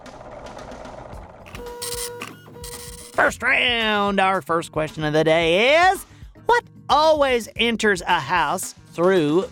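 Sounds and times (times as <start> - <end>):
loud mechanical contraption whirring and clinking: 1.5 - 3.2
speech: 3.2 - 9.5.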